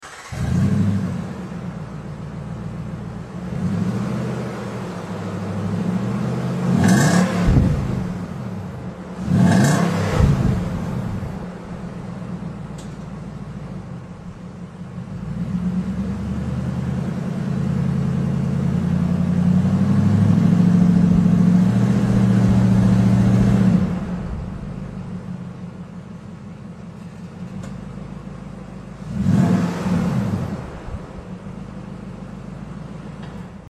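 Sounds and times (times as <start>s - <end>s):
Nissan Titan 5.6L exhaust: 0.0s - 33.6s.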